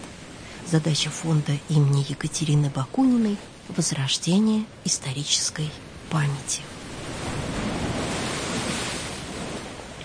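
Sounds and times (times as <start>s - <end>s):
speech: 0.7s - 6.8s
wind buffeting the microphone: 6.8s - 10.0s
waves washing against a granite stone embankment: 6.9s - 9.8s.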